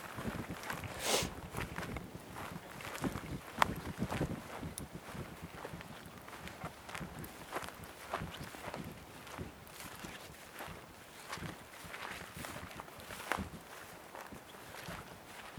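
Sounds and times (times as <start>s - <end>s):
footsteps crunching along an outdoor path: 0.0s - 15.5s
soft rustling: 5.0s - 15.5s.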